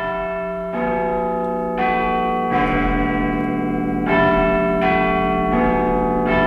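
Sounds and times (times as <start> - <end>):
large clock tower bells in London chiming a slow melody: 0.0 - 6.4.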